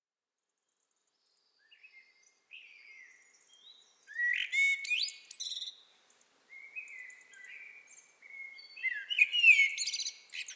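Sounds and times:
Common blackbird Turdus merula song: 1.1 - 10.5.

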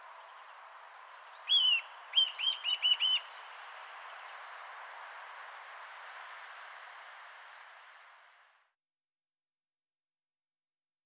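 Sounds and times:
faint background hiss: 0.0 - 8.7
Eurasian nuthatch Sitta europaea whistled calls: 1.4 - 3.4.

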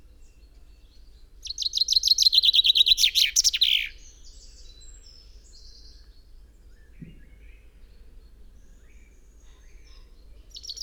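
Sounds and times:
common chaffinch Fringilla coelebs song of descending high chirps: 1.5 - 3.9.

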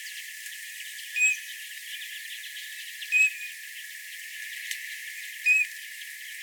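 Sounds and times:
Eurasian bullfinch Pyrrhula pyrrhula giving soft piping whistles: 1.2 - 1.4, 3.1 - 3.4, 5.5 - 5.7.

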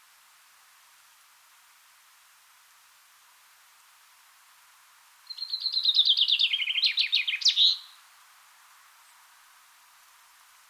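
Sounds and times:
light background noise: 0.0 - 10.6
common chaffinch Fringilla coelebs singing: 5.3 - 8.0.

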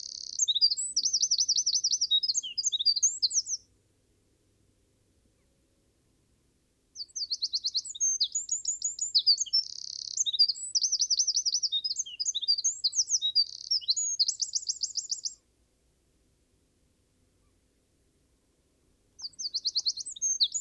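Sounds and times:
Eurasian wren Troglodytes troglodytes song: 0.0 - 3.7, 7.0 - 15.5, 19.2 - 20.5.

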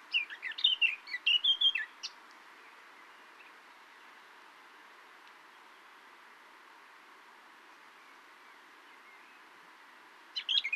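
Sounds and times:
Eurasian blackcap Sylvia atricapilla chirping: 0.1 - 2.2, 10.4 - 10.7.

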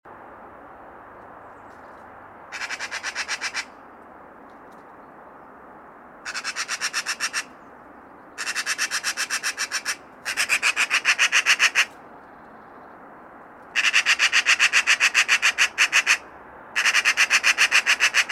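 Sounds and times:
Eurasian magpie chattering, Pica pica: 2.5 - 3.7, 6.3 - 7.5, 8.4 - 11.9, 13.8 - 16.2, 16.8 - 18.3.

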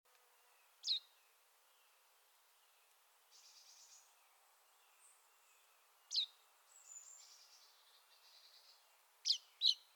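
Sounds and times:
common chaffinch Fringilla coelebs calling: 9.2 - 9.9.

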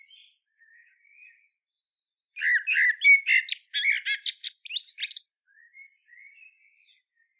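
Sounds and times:
Eurasian blackbird Turdus merula giving scratchy, squeaky notes: 2.4 - 5.2.

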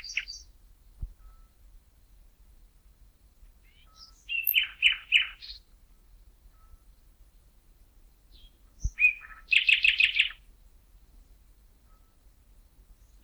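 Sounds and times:
Common nightingale Luscinia megarhynchos singing: 0.0 - 0.5, 1.2 - 1.6, 3.6 - 5.7, 6.5 - 7.1, 8.3 - 10.5, 13.0 - 13.2.

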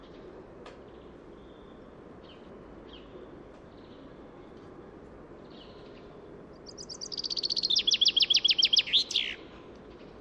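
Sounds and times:
Fringilla coelebs common chaffinch singing: 5.5 - 9.4.

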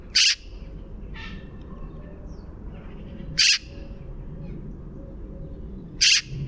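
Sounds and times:
Eurasian magpie Pica pica giving harsh rasping chack calls: 0.1 - 0.5, 3.3 - 3.7, 6.0 - 6.3.

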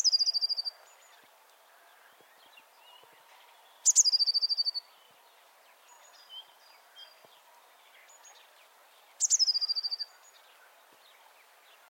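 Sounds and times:
Eurasian blue tit Cyanistes caeruleus calling: 0.0 - 0.8, 3.8 - 4.9, 9.2 - 10.4
faint bird chirps: 0.0 - 11.8.

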